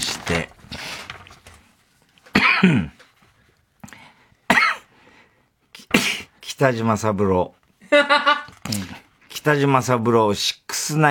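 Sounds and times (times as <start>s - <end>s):
person having a coughing fit: 2.3s - 3.0s, 4.5s - 4.9s
speech: 2.6s - 3.0s, 6.6s - 11.0s.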